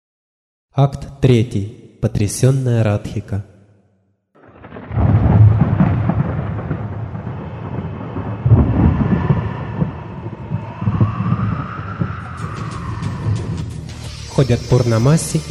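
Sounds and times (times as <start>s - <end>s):
speech: 0.8s - 3.5s, 14.4s - 15.4s
loud deep rumbling roar: 4.4s - 13.9s.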